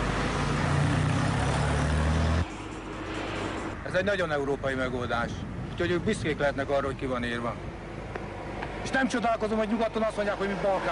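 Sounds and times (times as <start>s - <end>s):
heavy road traffic with passing cars: 0.0s - 10.8s
speech: 3.9s - 7.7s, 8.8s - 10.8s.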